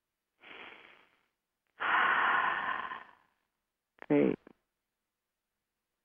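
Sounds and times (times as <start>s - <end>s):
deep breaths during a guided group breathing exercise: 0.4s - 3.4s
speech: 4.1s - 4.5s.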